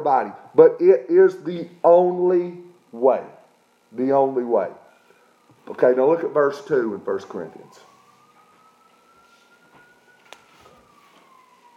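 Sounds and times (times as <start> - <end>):
person preaching a sermon: 0.0 - 3.4, 5.7 - 7.9
speech: 0.0 - 4.8, 5.7 - 7.9
emergency vehicle siren wailing outside: 5.4 - 11.7.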